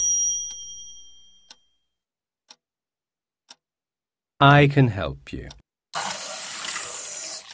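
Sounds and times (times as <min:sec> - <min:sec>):
speech: 0:04.4 - 0:05.6
water running from a tap: 0:06.0 - 0:07.5.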